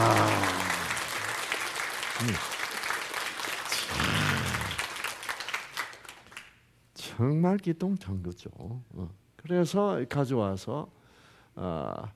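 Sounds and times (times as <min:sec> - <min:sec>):
audience applause: 0:00.0 - 0:06.4
speech: 0:02.2 - 0:02.5, 0:07.2 - 0:11.0, 0:11.6 - 0:12.1.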